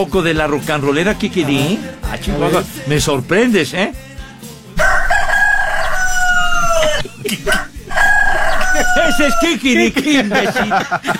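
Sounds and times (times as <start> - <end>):
speech: 0.0 - 4.0, 9.0 - 11.1
rooster crowing: 4.8 - 9.7
squawking: 4.8 - 9.8
laughter: 6.7 - 11.1.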